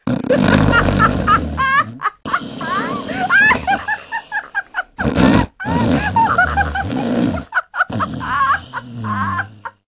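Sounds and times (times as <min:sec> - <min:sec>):
person snoring: 0:00.0 - 0:09.8
person laughing: 0:00.3 - 0:09.8.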